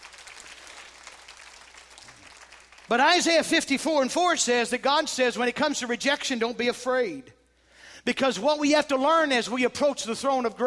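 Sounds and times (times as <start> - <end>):
many hands clapping in praise at a church sermon: 0.0 - 3.4
speech: 2.9 - 7.4, 8.0 - 10.6.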